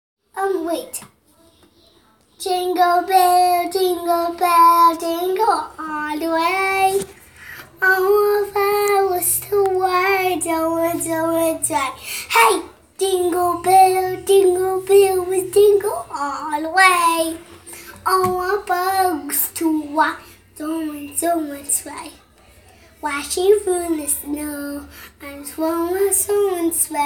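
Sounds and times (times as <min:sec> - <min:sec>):
person singing a Christmas song: 0:02.4 - 0:27.0.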